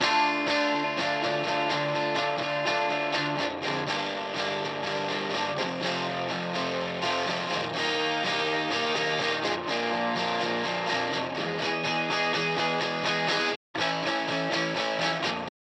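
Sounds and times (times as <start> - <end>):
guitar overdubs: 0.0 - 15.5.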